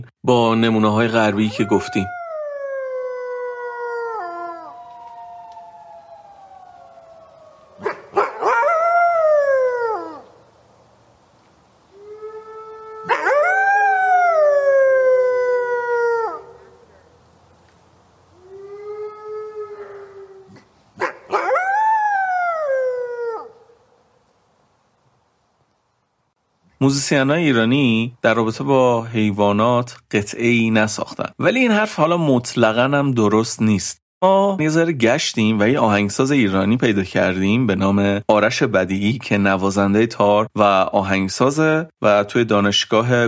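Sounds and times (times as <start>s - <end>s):
speech: 0.0s - 2.2s, 26.9s - 43.2s
female dog howling: 1.1s - 10.3s, 11.9s - 17.0s, 18.4s - 23.8s.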